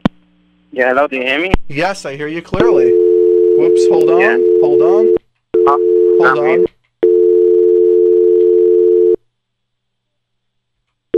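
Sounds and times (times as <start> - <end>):
speech: 0.8 - 3.0, 3.6 - 6.8
telephone line tone after a dropped call: 2.6 - 9.2.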